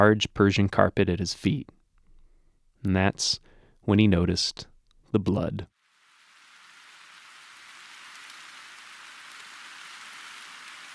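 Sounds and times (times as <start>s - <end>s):
speech: 0.0s - 1.8s, 2.8s - 5.7s
steady rain: 5.8s - 10.9s.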